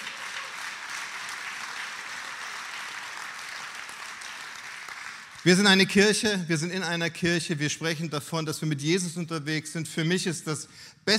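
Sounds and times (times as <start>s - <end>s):
audience applause in a church: 0.0s - 5.7s
speech: 5.4s - 11.1s.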